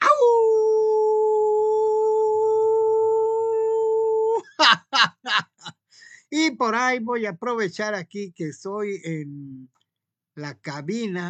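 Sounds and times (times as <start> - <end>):
person imitating a wolf howl: 0.0 - 4.5
laughter: 4.4 - 5.8
speech: 6.6 - 9.8, 10.4 - 11.2.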